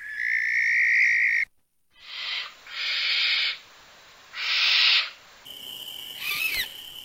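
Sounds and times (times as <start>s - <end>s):
barn owl screeching: 0.0s - 3.6s, 4.3s - 5.2s, 6.1s - 6.8s.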